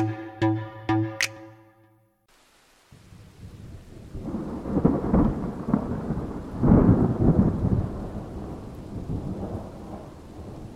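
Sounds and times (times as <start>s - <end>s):
steady rain hissing: 2.3s - 10.7s
deep rolling thunder in a thunderstorm: 3.0s - 10.7s.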